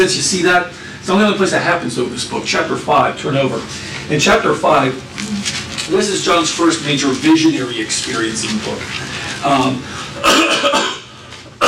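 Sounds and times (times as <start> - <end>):
speech: 0.0 - 10.9
person making a raspy throat-clear: 10.1 - 11.6
person making harsh coughs: 10.1 - 11.6.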